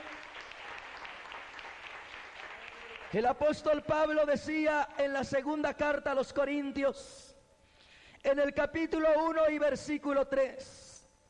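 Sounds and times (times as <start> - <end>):
church congregation applauding: 0.0 - 3.8
speech: 3.1 - 7.2, 8.3 - 10.8.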